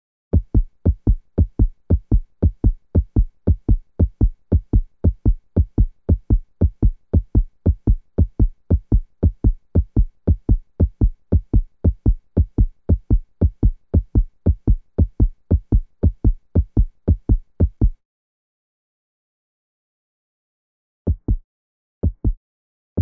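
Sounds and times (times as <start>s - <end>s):
heartbeat: 0.4s - 18.0s, 21.1s - 21.4s, 22.0s - 22.4s.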